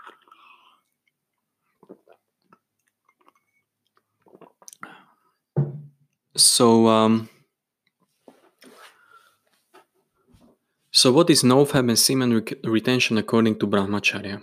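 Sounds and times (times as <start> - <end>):
person sipping hot tea: 0.0 - 5.4
speech: 1.9 - 2.1, 6.6 - 7.3, 11.0 - 14.4.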